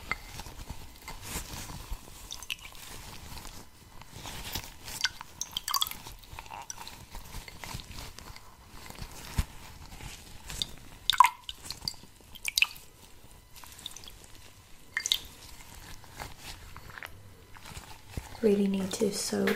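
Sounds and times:
cloth soaked in water being squished and dripping: 0:00.0 - 0:18.4
water splashing: 0:05.0 - 0:06.8, 0:10.6 - 0:12.8, 0:14.9 - 0:15.7
speech: 0:18.4 - 0:19.5.

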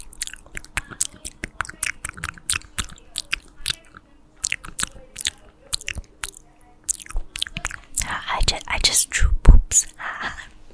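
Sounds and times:
sensitive wet mouth clicks and smacks: 0:00.0 - 0:08.2
crunching and chewing: 0:00.0 - 0:08.7
faint steady low hum: 0:00.0 - 0:10.7.

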